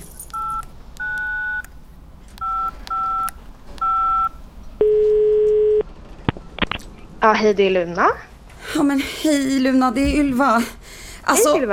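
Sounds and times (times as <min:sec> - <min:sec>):
longer lower steady telephone tone: 0:00.4 - 0:01.7, 0:02.4 - 0:06.8
telephone keypad dialing beeps: 0:00.4 - 0:01.7, 0:02.4 - 0:05.8
speech: 0:07.2 - 0:11.7.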